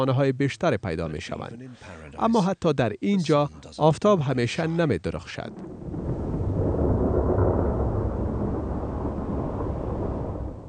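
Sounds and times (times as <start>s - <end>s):
speech: 0.0s - 5.9s
deep rumble of thunder: 5.5s - 10.6s
heavy rainstorm: 5.5s - 10.6s.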